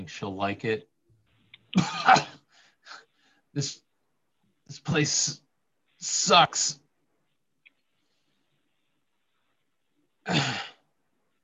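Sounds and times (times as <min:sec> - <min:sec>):
speech: 0:00.0 - 0:00.9, 0:01.7 - 0:02.3, 0:03.6 - 0:03.8, 0:04.7 - 0:05.4, 0:06.0 - 0:06.8, 0:10.3 - 0:10.7
person coughing harshly: 0:01.8 - 0:02.4, 0:10.2 - 0:10.8.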